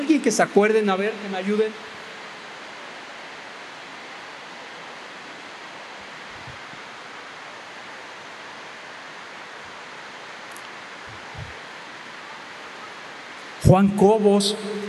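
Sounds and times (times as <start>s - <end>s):
heavy rain: 0.0s - 13.7s
speech: 0.1s - 2.0s, 13.7s - 14.8s
soft low thumps: 11.1s - 11.6s.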